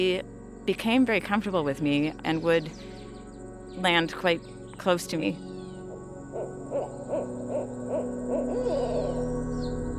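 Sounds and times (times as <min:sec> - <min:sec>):
speech: 0:00.0 - 0:02.9, 0:03.7 - 0:05.5
owl hooting: 0:05.4 - 0:09.9.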